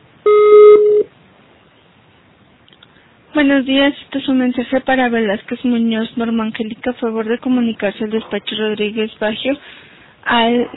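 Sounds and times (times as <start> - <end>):
voicemail recording tone beep: 0.3 - 1.1
speech: 3.4 - 10.7.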